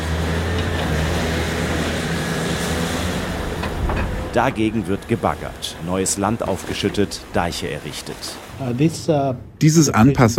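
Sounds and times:
Pacific ocean surf rushing onto the coast: 0.0s - 9.6s
speech: 4.4s - 10.3s.

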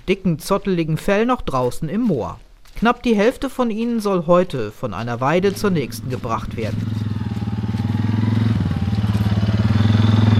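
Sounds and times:
speech: 0.1s - 7.0s
four-wheeled off-road quad bike engine on a moorland sheep pasture: 5.4s - 10.3s.

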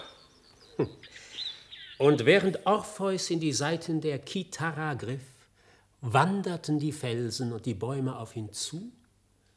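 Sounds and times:
faint birds chirping: 0.0s - 3.7s
speech: 0.8s - 1.2s, 2.0s - 5.3s, 6.0s - 9.0s.

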